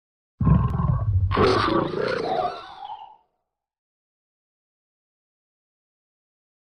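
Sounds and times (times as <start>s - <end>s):
monster sound effect: 0.4s - 2.7s.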